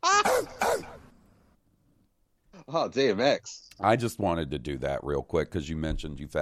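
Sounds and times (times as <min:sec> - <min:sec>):
gruff dog barking sound effect: 0:00.2 - 0:01.1
speech: 0:02.7 - 0:06.3.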